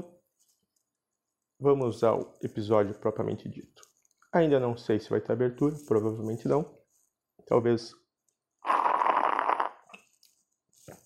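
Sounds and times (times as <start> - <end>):
speech: 1.6 - 6.8, 7.4 - 8.0
raspy gurgling slurp from a chimarrão gourd through a metal straw: 8.6 - 10.1.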